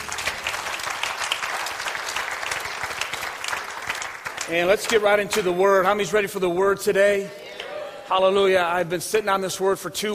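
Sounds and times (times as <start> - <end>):
audience clapping hands in praise: 0.0 - 5.5
speech: 4.5 - 7.4, 8.1 - 10.1.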